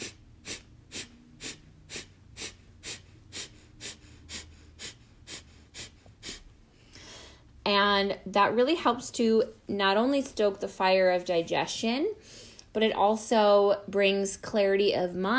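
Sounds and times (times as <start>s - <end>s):
forceful nasal exhales in breath-of-fire yoga breathing: 0.0s - 7.4s
quiet passive inhales: 0.0s - 7.6s, 12.2s - 12.7s
speech: 7.7s - 15.3s.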